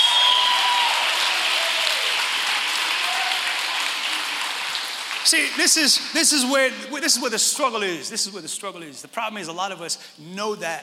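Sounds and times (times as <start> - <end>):
scattered whistles from the crowd: 0.0 - 0.8
scattered shouts from the crowd: 0.0 - 2.2, 3.0 - 3.7
large crowd clapping and cheering: 0.0 - 6.7
speech: 5.3 - 10.8.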